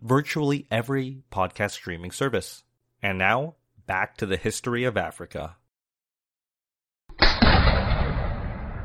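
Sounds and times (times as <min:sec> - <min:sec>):
speech: 0:00.0 - 0:05.6
rifle gunshot in a courtyard: 0:07.1 - 0:08.8
booming echo of a gunshot in a courtyard: 0:07.2 - 0:08.8.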